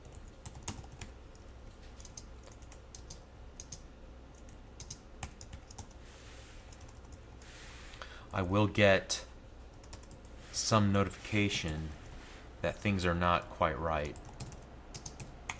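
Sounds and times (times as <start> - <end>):
typing code on a computer keyboard: 0.0 - 6.0, 6.7 - 7.2, 9.7 - 10.3, 14.2 - 15.5
speech: 8.4 - 9.2, 10.7 - 12.0, 12.6 - 14.3.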